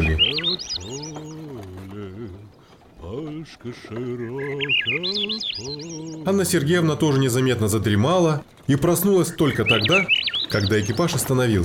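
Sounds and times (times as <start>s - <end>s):
coachman singing softly in long sustained tones: 0.0s - 7.0s
birds chirping in a birch forest in June: 0.0s - 11.6s
speech: 0.1s - 1.4s, 3.1s - 11.6s.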